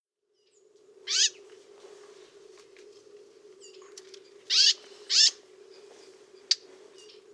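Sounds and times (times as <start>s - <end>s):
steady low hum: 0.4s - 7.3s
Eurasian blackcap giving harsh, scratchy down-sweeping calls, Sylvia atricapilla: 1.1s - 1.4s, 4.5s - 5.4s.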